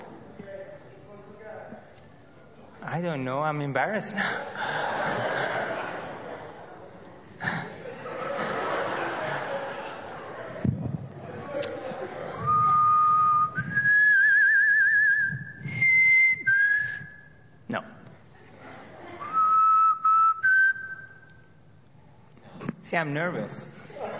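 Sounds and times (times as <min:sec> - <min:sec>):
speech: 0:02.9 - 0:04.7, 0:23.0 - 0:23.9
laughter: 0:04.1 - 0:13.6, 0:18.3 - 0:19.6, 0:23.7 - 0:24.1
person whistling a slow simple hymn melody: 0:12.4 - 0:17.4, 0:19.2 - 0:21.4.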